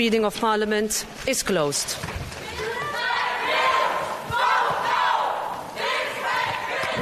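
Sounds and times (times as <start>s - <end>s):
speech: 0.0s - 2.4s
crowd of protesters shouting slogans in unison during a parliamentary vote: 2.4s - 7.0s.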